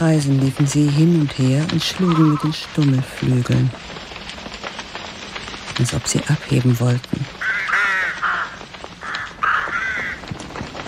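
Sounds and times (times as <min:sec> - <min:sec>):
speech: 0:00.0 - 0:04.0, 0:05.8 - 0:07.6
flock of crows cawing loudly: 0:07.4 - 0:10.5.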